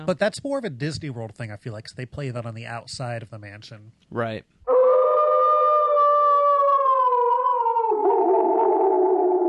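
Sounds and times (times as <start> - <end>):
speech: 0.0 - 4.6
wolf or dog howling: 4.7 - 9.4.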